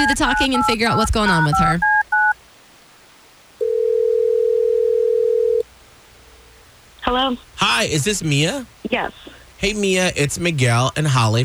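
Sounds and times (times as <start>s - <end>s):
telephone line beep as a call is placed: 0.0s - 2.4s, 3.6s - 5.6s
speech: 0.1s - 2.0s, 7.1s - 11.4s
telephone dial tone: 3.6s - 5.6s.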